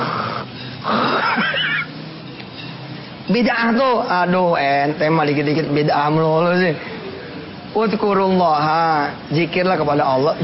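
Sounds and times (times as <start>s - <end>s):
voice imitating snoring: 0.0s - 1.2s
speech: 3.3s - 6.9s, 7.7s - 10.4s.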